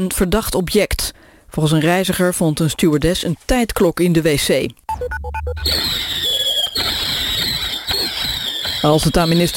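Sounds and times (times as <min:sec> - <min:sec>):
speech: 0:00.0 - 0:06.2, 0:08.8 - 0:09.5
shrill whistling firework rockets on New Year's Eve: 0:05.6 - 0:09.5
fireworks crackling and hissing with a high whine on New Year's Eve: 0:05.7 - 0:09.5.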